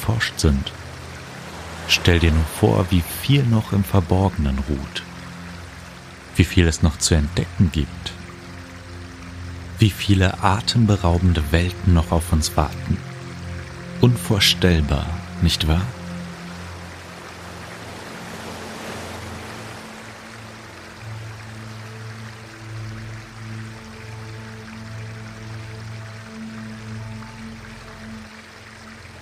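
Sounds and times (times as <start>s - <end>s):
broad wind-like noise: 0.0s - 29.2s
river current flowing: 0.0s - 29.2s
speech: 0.1s - 0.8s, 1.9s - 5.1s, 6.4s - 8.2s, 9.8s - 13.1s, 14.0s - 16.0s.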